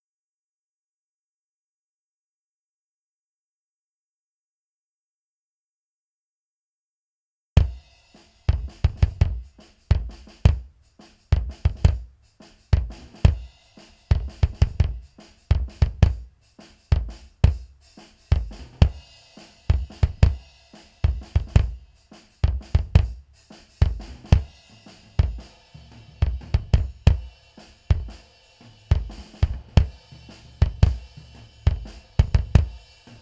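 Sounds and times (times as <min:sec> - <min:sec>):
bass drum: 0:07.6 - 0:33.1.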